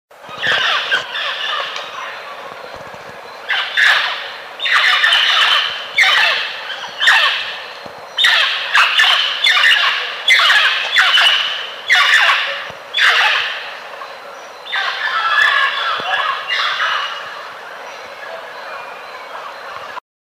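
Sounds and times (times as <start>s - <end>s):
Amazona harinosa surena calling: 0.3s - 2.4s, 3.4s - 17.6s.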